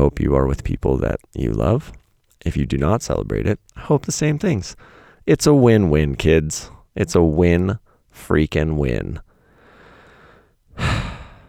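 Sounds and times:
speech: 0:00.0 - 0:09.3
loud exhale into the microphone: 0:04.8 - 0:05.2, 0:09.3 - 0:11.4.

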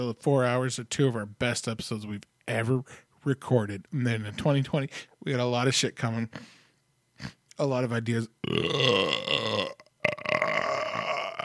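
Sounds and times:
speech: 0:00.0 - 0:06.6, 0:07.2 - 0:09.6
loud drawn-out guttural burp: 0:08.4 - 0:11.4.

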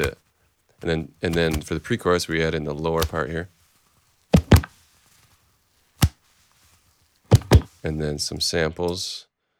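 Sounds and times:
speech: 0:00.0 - 0:00.2, 0:00.8 - 0:03.6, 0:07.8 - 0:09.3
hands slapping knees as percussion: 0:00.8 - 0:01.9, 0:02.9 - 0:03.4, 0:04.4 - 0:04.8, 0:07.3 - 0:07.8.

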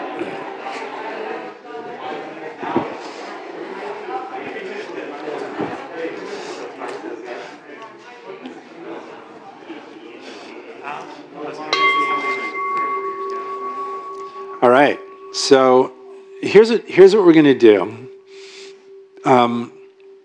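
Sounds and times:
crowd of people chattering: 0:00.0 - 0:20.2
handheld bell ringing: 0:11.7 - 0:20.2
speech: 0:15.5 - 0:15.9, 0:16.5 - 0:18.0, 0:19.3 - 0:19.8.

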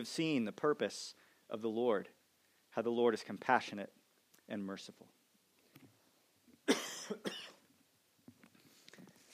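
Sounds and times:
speech: 0:00.0 - 0:02.2, 0:02.8 - 0:05.2
person coughing from allergy: 0:06.6 - 0:07.6.

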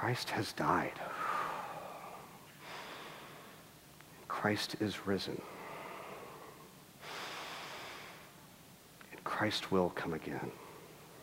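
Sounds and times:
speech: 0:00.0 - 0:01.2, 0:04.4 - 0:05.6, 0:09.4 - 0:10.6
church congregation drawing a breath together: 0:01.0 - 0:03.7, 0:05.4 - 0:08.4.

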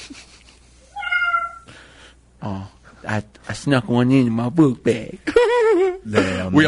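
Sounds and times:
kitten meowing: 0:00.9 - 0:01.7
speech: 0:02.4 - 0:06.6.

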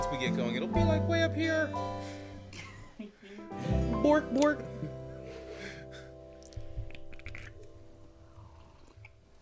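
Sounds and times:
speech: 0:00.1 - 0:02.1, 0:03.0 - 0:05.0
small wet swallowing sounds: 0:06.0 - 0:09.4
sip of a drink slurped into the microphone: 0:06.4 - 0:09.4.

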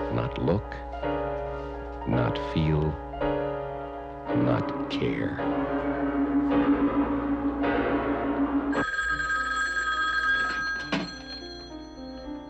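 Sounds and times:
speech: 0:00.3 - 0:01.3, 0:02.0 - 0:03.5, 0:04.3 - 0:07.2
steady low hum: 0:03.0 - 0:09.6
telephone bell ringing: 0:08.7 - 0:12.4.

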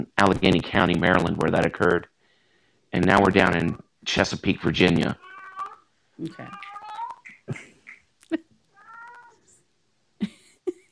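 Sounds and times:
speech: 0:00.0 - 0:02.1, 0:02.9 - 0:05.3, 0:06.2 - 0:06.7
faint noise: 0:00.0 - 0:10.9
cat meowing and yowling: 0:05.1 - 0:07.5, 0:08.7 - 0:09.5.

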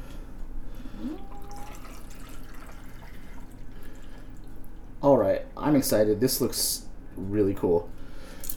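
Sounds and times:
shaken slightly effervescent cocktail pouring into a glass: 0:01.0 - 0:04.8
speech: 0:05.6 - 0:08.0.

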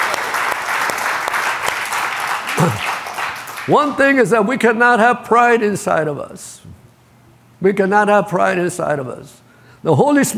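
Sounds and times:
audience clapping: 0:00.0 - 0:03.8
vocal exclamation: 0:02.6 - 0:02.8
speech: 0:02.6 - 0:02.9, 0:03.7 - 0:06.7, 0:07.6 - 0:10.3.

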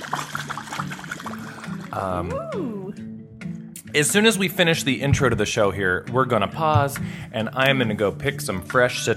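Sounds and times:
bubbles blown through a straw into a drink: 0:00.0 - 0:03.0
speech: 0:02.0 - 0:03.0, 0:03.9 - 0:09.1.

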